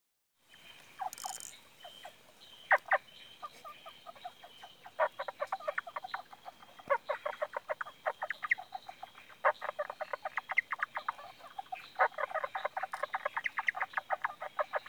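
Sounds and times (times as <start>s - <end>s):
Indian bronzed frog Indosylvirana temporalis clicking calls: 0.8s - 14.8s.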